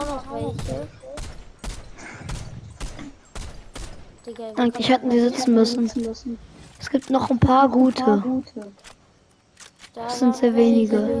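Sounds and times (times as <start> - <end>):
video game gunshots: 0.0 - 4.3
busy background of video game sounds: 0.0 - 11.1
speech: 4.3 - 8.9, 10.0 - 11.1.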